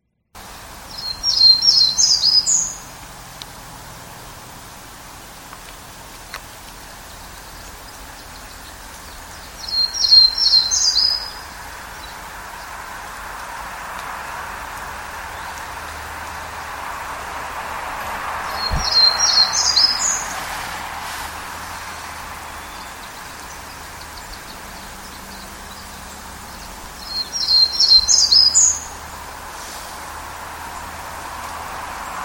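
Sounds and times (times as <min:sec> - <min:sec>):
Townsend's Warbler singing: 0:00.4 - 0:13.7, 0:15.0 - 0:31.4
soft outdoor hiss: 0:00.4 - 0:32.2.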